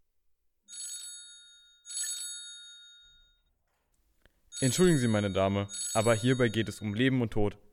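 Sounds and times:
old-fashioned telephone bell ringing in a phone booth: 0:00.7 - 0:03.6, 0:04.5 - 0:07.2
speech: 0:04.6 - 0:07.6.

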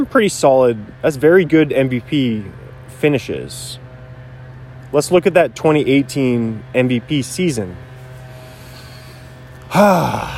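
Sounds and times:
speech: 0:00.0 - 0:03.8, 0:04.9 - 0:07.9, 0:09.7 - 0:10.3
person taking a gasp-like breath: 0:08.3 - 0:10.3.

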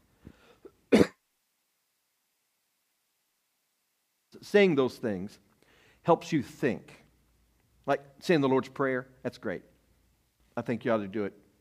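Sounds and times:
sharp cough: 0:00.6 - 0:01.2
speech: 0:04.4 - 0:07.0, 0:07.9 - 0:09.7, 0:10.6 - 0:11.4.

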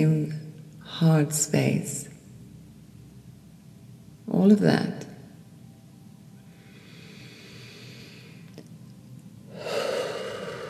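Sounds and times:
speech: 0:00.0 - 0:02.1, 0:04.3 - 0:05.1
deep forceful breathwork inhale: 0:06.6 - 0:08.5, 0:09.5 - 0:10.6.

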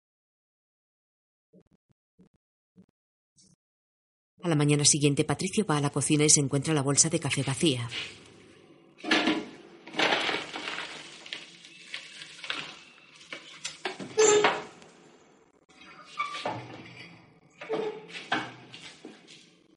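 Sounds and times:
speech: 0:04.4 - 0:08.3
dishes and utensils knocked about in kitchen cupboards: 0:09.0 - 0:14.7, 0:15.7 - 0:19.2.

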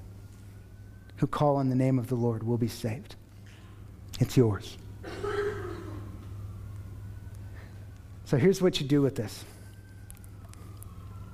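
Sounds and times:
sirens of fire engines and paramedic vehicles passing by: 0:00.0 - 0:02.6, 0:04.8 - 0:11.3
speech: 0:01.2 - 0:03.2, 0:04.2 - 0:05.2, 0:08.3 - 0:09.5.

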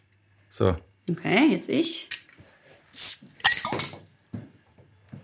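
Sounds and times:
speech: 0:00.6 - 0:02.1
sharp glassy clink of a beer bottle with ringing tone: 0:03.4 - 0:04.5.

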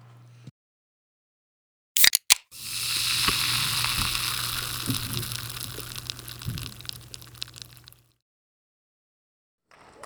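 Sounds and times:
soda can tab clicking and popping: 0:02.0 - 0:08.1
fizzing hiss of an opened soda can: 0:02.5 - 0:08.0.

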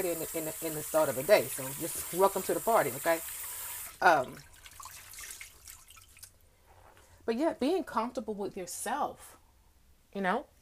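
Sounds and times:
speech: 0:00.0 - 0:04.5, 0:07.3 - 0:09.4, 0:10.1 - 0:10.5
water running from a tap into a sink: 0:00.0 - 0:06.3.

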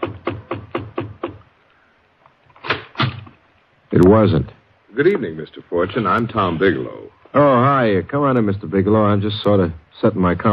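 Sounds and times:
knocking on a wooden chamber door: 0:00.0 - 0:01.4
speech: 0:03.9 - 0:10.5.

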